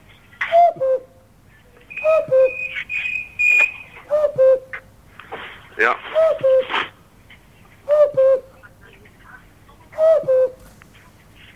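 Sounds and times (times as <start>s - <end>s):
cuckoo calling: 0.0s - 4.9s, 6.0s - 7.0s, 7.8s - 8.6s, 9.9s - 10.7s
speech: 5.8s - 6.1s.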